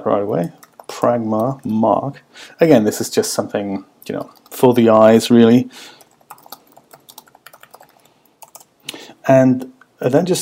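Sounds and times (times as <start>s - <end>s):
speech: 0.0s - 6.0s, 9.3s - 10.3s
typing on a computer keyboard: 0.4s - 1.6s, 4.1s - 4.7s, 6.0s - 8.7s.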